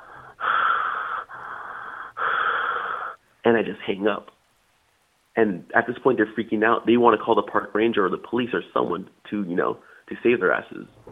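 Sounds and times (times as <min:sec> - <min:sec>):
heavy raspy breaths pushed into a phone: 0:00.0 - 0:03.2
speech: 0:03.5 - 0:04.4, 0:05.4 - 0:11.1.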